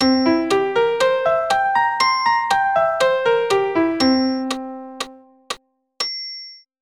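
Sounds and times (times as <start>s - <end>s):
C7 arpeggio on a keyboard: 0.0s - 5.4s.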